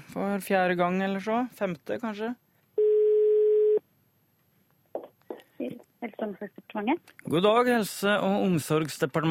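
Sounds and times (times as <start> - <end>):
speech: 0.2 - 2.4, 5.6 - 9.2
telephone ringback tone over a phone line: 2.8 - 3.8.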